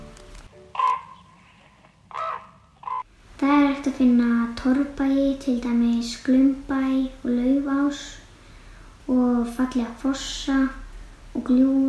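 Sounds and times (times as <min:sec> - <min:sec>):
raven croaking in the Ásbyrgi canyon in Iceland: 0:00.7 - 0:01.4, 0:02.1 - 0:03.1
speech: 0:03.4 - 0:08.2, 0:09.1 - 0:10.8, 0:11.4 - 0:11.8.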